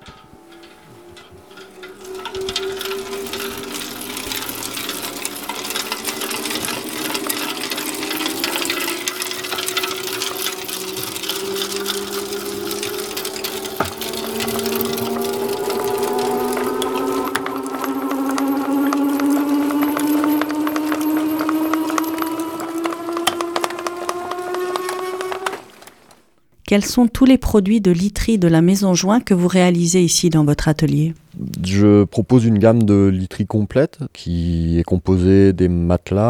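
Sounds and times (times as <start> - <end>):
rhythmic mechanical clatter of a wool-breaking machine: 0.0 - 26.2
wool-breaking machine motor starting up in a bedding workshop: 0.0 - 26.4
speech: 26.7 - 36.2.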